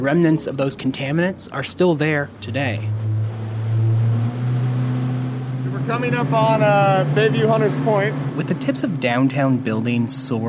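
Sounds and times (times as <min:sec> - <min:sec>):
speech: 0:00.0 - 0:03.2, 0:05.9 - 0:10.4
boat engine droning on San Francisco Bay: 0:02.3 - 0:10.4
wind rushing around a boat: 0:02.4 - 0:06.0
water rushing around a boat: 0:02.5 - 0:10.3.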